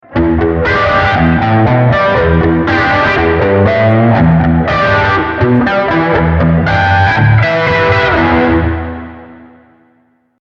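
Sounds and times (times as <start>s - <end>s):
guitar through a Cube 80X Brit combo amp with plate reverb: 0.0s - 10.4s.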